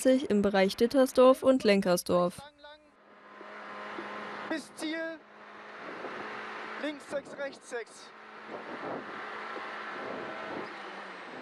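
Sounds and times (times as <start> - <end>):
speech: 0.0 - 2.6, 4.5 - 5.3, 6.8 - 10.8
rally car engine roaring during a rally sprint at Lößnitz: 3.0 - 11.4.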